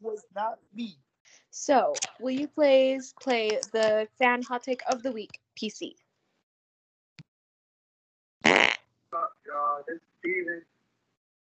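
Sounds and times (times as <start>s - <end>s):
speech: 0.2s - 6.0s, 8.4s - 10.7s
loud raspy fart: 8.4s - 8.8s.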